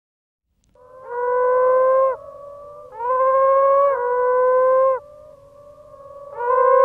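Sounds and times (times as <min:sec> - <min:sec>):
frog moaning calls: 0:00.8 - 0:06.8.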